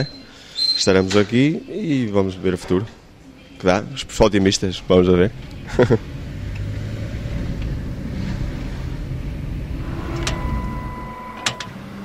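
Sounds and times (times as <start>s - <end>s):
speech: 0.0s - 0.2s, 0.8s - 3.0s, 3.6s - 6.1s
car engine rumbling: 3.9s - 12.0s
motorized factory barrier gate humming open with a thin whine: 4.9s - 12.0s
laughter: 5.6s - 6.1s.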